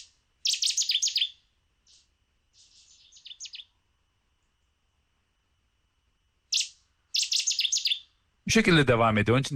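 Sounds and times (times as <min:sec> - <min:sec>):
small bird singing a bright rapid phrase of high chirps: 0:00.0 - 0:03.8, 0:06.5 - 0:08.2
speech: 0:08.5 - 0:09.5.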